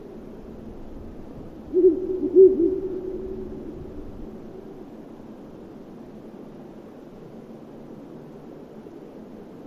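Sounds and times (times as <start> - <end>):
Ural owl hooting: 1.7 - 4.0.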